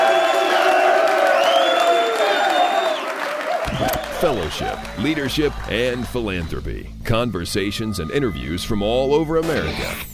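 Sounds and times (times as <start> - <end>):
crowd whoops and shouts: 0.0 - 6.2
large crowd clapping for volunteers: 0.0 - 6.9
speech: 4.2 - 10.1.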